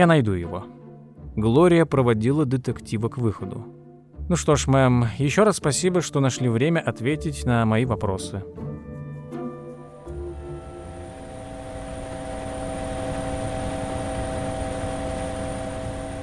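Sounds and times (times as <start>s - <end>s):
speech: 0.0s - 0.8s, 1.4s - 8.7s
helicopter landing at a military facility in New Mexico: 10.1s - 16.2s.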